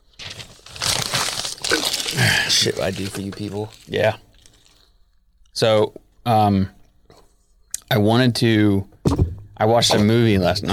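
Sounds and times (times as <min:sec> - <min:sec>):
paper being crumpled: 0:00.0 - 0:05.0
speech: 0:02.5 - 0:04.3, 0:05.6 - 0:06.8, 0:07.9 - 0:08.9, 0:09.6 - 0:10.7.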